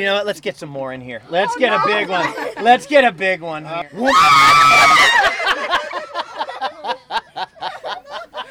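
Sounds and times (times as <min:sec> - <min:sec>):
speech: 0:00.0 - 0:05.3
laughter: 0:01.3 - 0:03.2, 0:04.0 - 0:08.5
people shrieking and squealing while handling wriggling eels: 0:03.9 - 0:05.6
person screaming while handling wriggling eels: 0:04.0 - 0:05.3.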